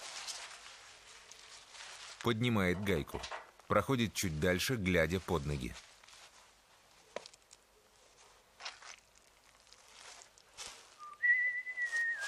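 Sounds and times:
footsteps on concrete blocks: 0.0 - 3.8, 4.6 - 12.2
rustling: 0.0 - 12.2
speech: 2.2 - 5.9
person whistling carefree while walking: 11.0 - 12.2.

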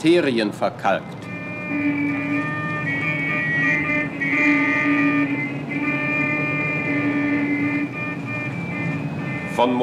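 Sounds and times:
speech: 0.0 - 2.7, 4.1 - 5.5, 9.6 - 9.8
big city street traffic: 0.0 - 9.8
sustained droning tones: 1.1 - 9.4.

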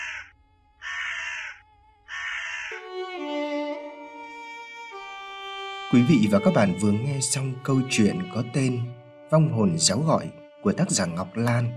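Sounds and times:
crow cawing as it leaps from a mango branch: 0.0 - 3.0
soft sustained music: 2.8 - 11.7
speech: 5.9 - 11.7.

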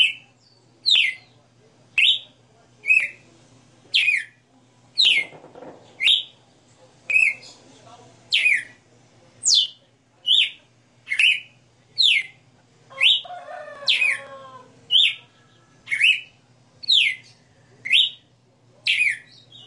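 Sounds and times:
female red-cowled cardinal singing live: 0.0 - 1.3, 2.0 - 3.2, 4.0 - 4.4, 5.0 - 5.3, 6.0 - 6.4, 7.1 - 7.6, 8.3 - 8.8, 9.4 - 14.3, 14.9 - 18.3, 18.9 - 19.6.

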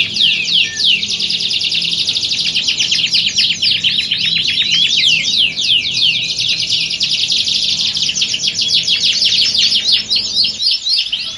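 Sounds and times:
Belgian canary warm-up song: 0.0 - 11.3.

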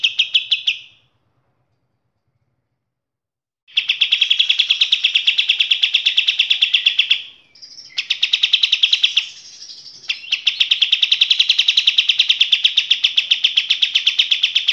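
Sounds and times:
kapas tembak training song for cage birds: 0.0 - 2.6, 3.7 - 14.7
thin whistles: 3.8 - 14.0.

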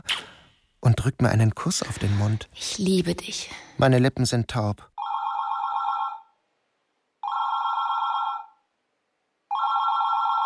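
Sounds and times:
speech: 1.0 - 4.9
telephone ringing with a bright bell tone: 5.0 - 6.4, 7.2 - 8.6, 9.5 - 10.4.

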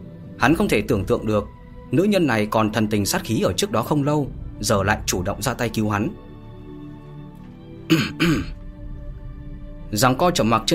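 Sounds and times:
speech: 0.4 - 6.2, 7.9 - 8.6, 9.9 - 10.7
dry throat clearing: 7.9 - 8.6.

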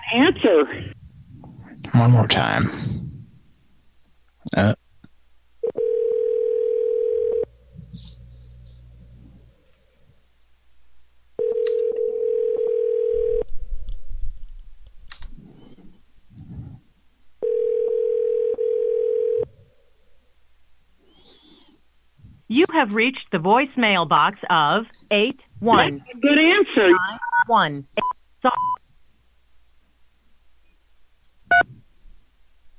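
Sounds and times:
speech: 0.1 - 1.0, 1.8 - 3.0, 4.5 - 4.8, 22.8 - 28.7
telephone dial tone during a call back: 5.6 - 7.5, 11.4 - 13.5, 17.4 - 19.5.

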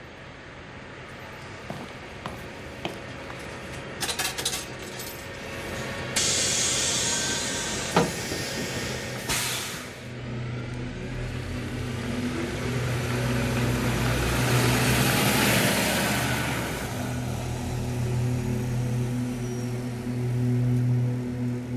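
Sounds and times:
bus engine rumble: 0.1 - 21.7
bus air hiss bursts: 6.2 - 10.0.

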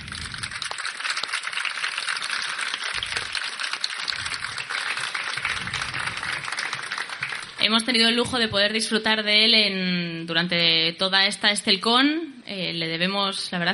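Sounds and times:
crowd applauding: 0.0 - 7.7
speech: 7.7 - 13.7.

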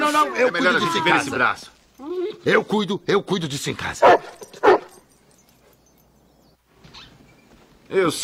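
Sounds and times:
speech: 0.2 - 4.8, 7.9 - 8.2
dog barking: 4.0 - 5.1
dog yelping: 4.0 - 5.9.

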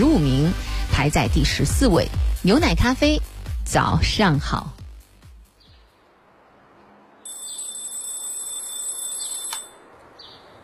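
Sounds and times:
speech: 0.0 - 4.8
alarm clock ringing with a high continuous electronic tone: 7.2 - 9.9.

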